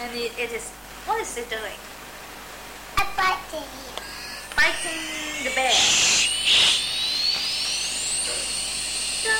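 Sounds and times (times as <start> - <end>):
speech: 0.1 - 1.9, 3.2 - 6.7
toy aeroplane electronic whine rising in pitch: 4.0 - 9.3.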